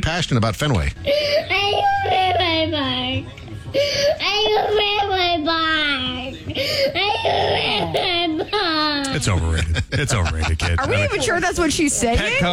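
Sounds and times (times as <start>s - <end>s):
speech: 0.0s - 1.4s, 2.6s - 8.2s, 9.2s - 12.5s
laughter: 1.0s - 4.8s, 6.1s - 12.5s
toddler whining and crying: 1.1s - 3.2s, 3.8s - 9.1s.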